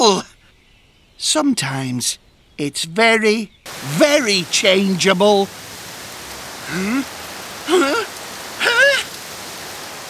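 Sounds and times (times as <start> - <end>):
speech: 1.2 - 5.6, 6.7 - 8.0
steady hiss of falling rain: 3.7 - 10.0
short wavering vocal exclamations: 6.4 - 9.2.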